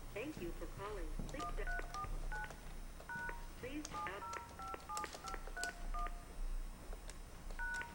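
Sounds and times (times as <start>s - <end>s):
people talking: 0.2s - 1.9s, 3.6s - 4.4s
telephone ringing tones of short electronic beeps: 1.4s - 6.3s, 7.6s - 7.9s.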